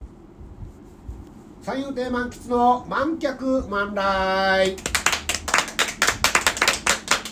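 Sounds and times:
speech: 0:01.6 - 0:04.9
sparse applause from a small audience at a comedy performance: 0:04.8 - 0:07.3.

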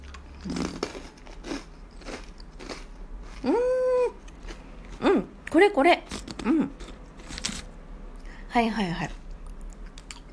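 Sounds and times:
speech: 0:00.4 - 0:00.6, 0:03.4 - 0:03.7, 0:05.6 - 0:06.8, 0:08.5 - 0:09.2
biting crunchy honey-fried rice cracker snack: 0:00.4 - 0:03.5.

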